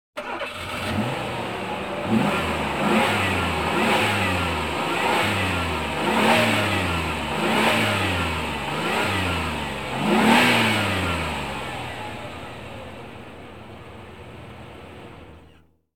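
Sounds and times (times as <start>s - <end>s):
automobile starting: 0.2s - 15.7s.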